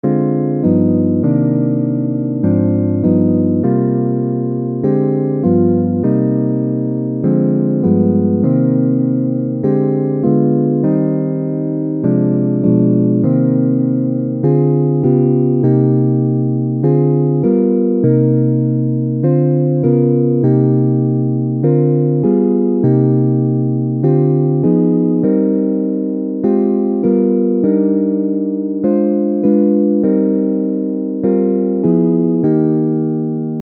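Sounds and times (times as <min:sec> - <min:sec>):
minor two-five chord: 0:00.0 - 0:33.6.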